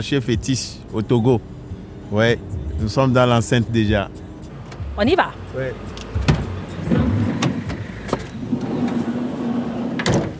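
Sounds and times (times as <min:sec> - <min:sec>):
speech: 0:00.0 - 0:04.2, 0:05.0 - 0:06.2
car door clunks and clicks as passengers get out: 0:04.5 - 0:10.3.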